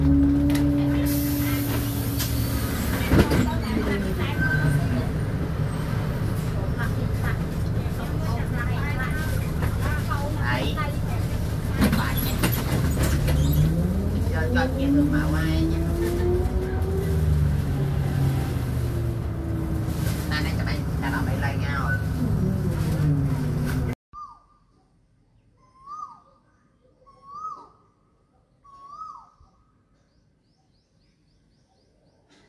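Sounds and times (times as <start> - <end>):
engines of passing vehicles on a Bangkok street: 0.0 - 24.0
heavy city street traffic rumble in Bangkok: 0.0 - 24.0
scattered clatter on a Bangkok street: 11.7 - 13.7.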